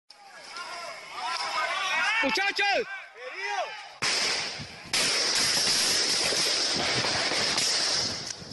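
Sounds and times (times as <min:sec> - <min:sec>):
people shouting frantically: 0:00.1 - 0:04.0
speech: 0:02.2 - 0:03.0
gunfire bursts: 0:04.0 - 0:08.3.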